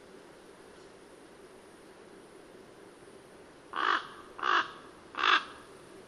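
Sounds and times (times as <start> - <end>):
quiet background hiss: 0.0 - 6.0
common raven giving harsh rasping calls: 3.7 - 5.7.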